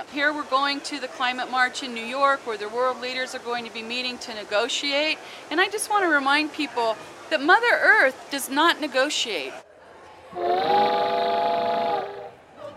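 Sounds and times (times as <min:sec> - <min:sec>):
speech: 0:00.0 - 0:09.7, 0:10.3 - 0:10.9
loud sustained train whistle: 0:10.3 - 0:12.4.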